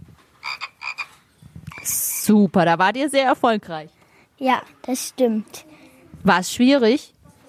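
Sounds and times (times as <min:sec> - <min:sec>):
programmed synthetic frog croak from a programmable box: 0:00.4 - 0:01.9
speech: 0:02.3 - 0:07.2.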